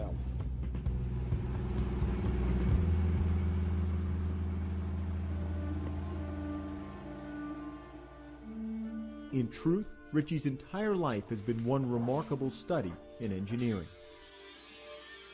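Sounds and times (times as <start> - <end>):
car engine running: 0.4 - 8.5
speech: 9.3 - 14.0.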